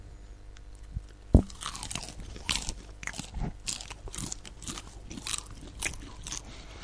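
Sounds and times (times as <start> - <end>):
person munching popcorn: 0.7 - 6.8.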